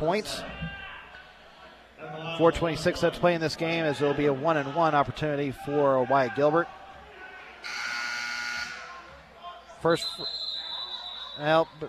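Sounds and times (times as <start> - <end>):
speech: 0.0 - 0.6, 2.4 - 6.8, 9.8 - 10.4, 11.4 - 11.8
crowd noise: 0.0 - 11.8
loud harsh basketball arena buzzer: 7.6 - 8.9.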